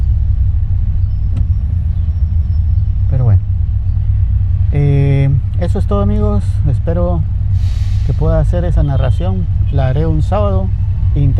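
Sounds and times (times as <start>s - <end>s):
car or motorcycle engine rumbling: 0.0s - 11.3s
speech: 5.9s - 7.4s, 8.2s - 11.3s.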